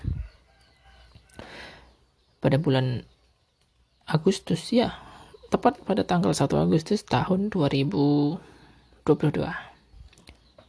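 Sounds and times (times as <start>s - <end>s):
rooster crowing: 0.0s - 1.7s
faint farmyard background: 0.0s - 10.6s
speech: 2.4s - 3.1s, 4.1s - 9.7s.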